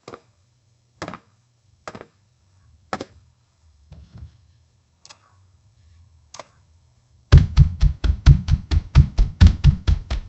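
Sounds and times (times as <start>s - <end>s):
mechanical robot feet stomping while walking: 7.3s - 10.2s.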